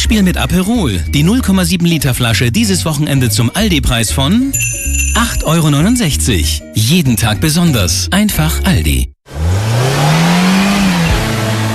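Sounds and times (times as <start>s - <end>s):
speech: 0.1s - 9.2s
car engine revving: 9.3s - 11.7s.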